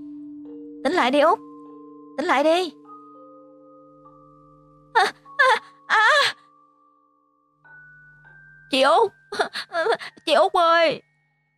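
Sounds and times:
speech: 0.8 - 1.5, 2.2 - 2.8, 5.0 - 5.6, 8.7 - 11.1
boy wailing and crying: 5.0 - 6.4.

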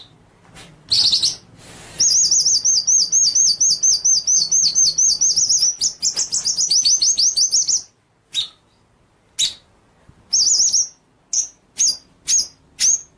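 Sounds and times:
White-rumped shama song with whistled trills and sharp notes: 0.9 - 8.8, 9.4 - 9.7, 10.3 - 13.1.

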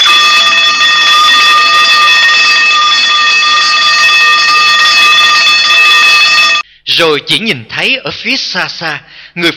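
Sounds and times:
hospital nurse call bell ringing on a ward: 0.0 - 6.7
speech: 7.0 - 9.5.

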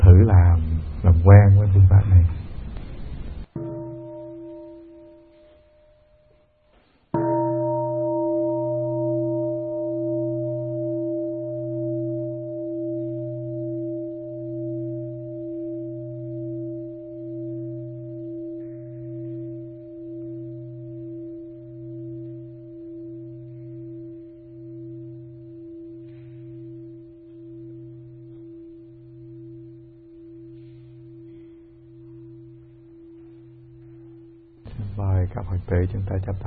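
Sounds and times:
speech: 0.2 - 2.9, 35.8 - 36.4
meditation bell struck to open a Buddhist practice session: 3.4 - 36.4.

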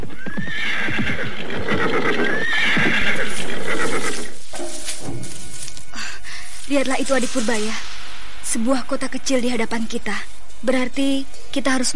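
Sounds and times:
tired staggering horse neighing: 0.0 - 4.4
horse hooves clip-clopping as it slows to a stop: 0.0 - 6.0
speech: 6.8 - 7.9, 8.5 - 11.9.

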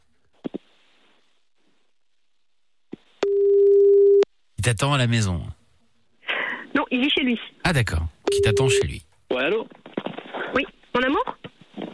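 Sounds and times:
telephone ringing tone of an outgoing call: 3.2 - 4.2, 8.3 - 9.0
speech: 4.6 - 5.6, 6.9 - 9.8, 10.5 - 11.3.

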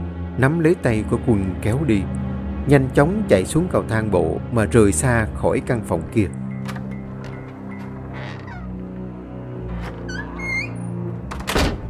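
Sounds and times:
speech: 0.4 - 6.4
automatic double room doors slamming shut: 6.6 - 8.9, 9.7 - 11.8
squeaky honking calls: 7.0 - 9.0.

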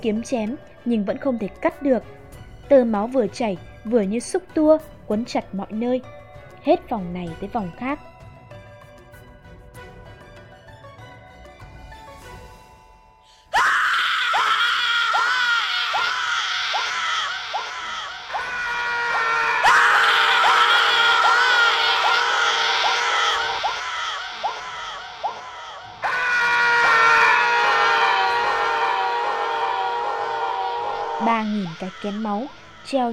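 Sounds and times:
speech: 0.0 - 8.1, 32.0 - 33.1
crowd screaming in agony: 13.5 - 33.1.

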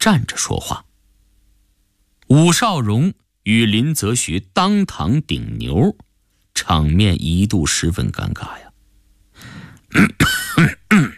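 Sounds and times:
speech: 0.0 - 0.9, 2.3 - 6.0, 6.6 - 8.6, 9.9 - 11.1
man's harsh cough and throat-clearing: 9.9 - 11.1.

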